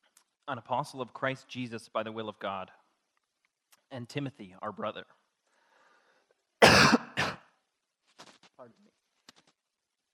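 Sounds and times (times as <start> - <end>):
speech: 0.5 - 2.8, 3.9 - 5.2, 8.6 - 9.0
person coughing after inhaling water: 6.6 - 7.5.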